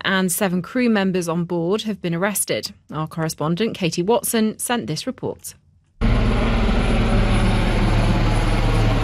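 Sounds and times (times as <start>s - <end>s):
speech: 0.1s - 5.6s
search helicopter engine and rotors over a ferry sinking: 6.0s - 9.0s.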